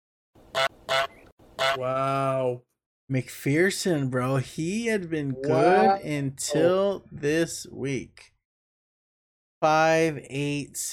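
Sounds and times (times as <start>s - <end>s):
goose honk sound effect: 0.5s - 1.8s
speech: 0.6s - 8.3s, 9.6s - 10.9s.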